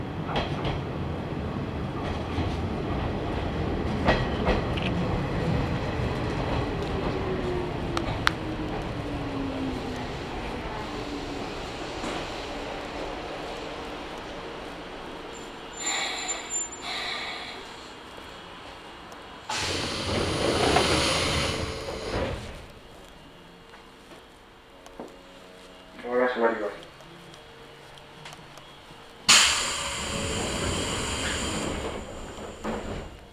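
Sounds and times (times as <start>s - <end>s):
local train rolling rumble: 0.0s - 33.3s
sharp hissing bursts: 19.5s - 22.4s, 29.3s - 33.2s
local train motor whine sliding downward as it slows: 19.5s - 22.9s, 29.3s - 33.3s.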